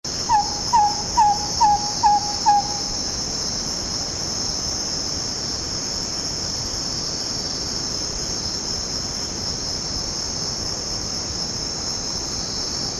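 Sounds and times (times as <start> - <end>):
Malagasy Scops-Owl calling in eastern Madagascar: 0.1 - 3.2.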